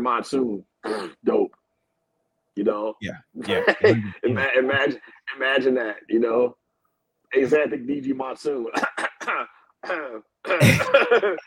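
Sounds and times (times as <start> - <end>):
speech: 0.0 - 1.4, 2.6 - 6.6, 7.3 - 11.4
harsh explosive cough mixed with vocal sound: 0.8 - 1.2, 8.8 - 11.4
short voiced bursts: 3.0 - 4.6
laughter: 3.4 - 4.8, 10.6 - 11.4.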